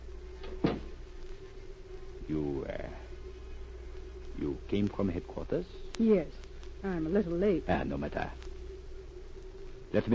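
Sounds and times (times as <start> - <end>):
faint steady hum: 0.0 - 10.1
door shutting: 0.4 - 1.0
speech: 2.3 - 3.1, 4.5 - 8.5, 9.9 - 10.1.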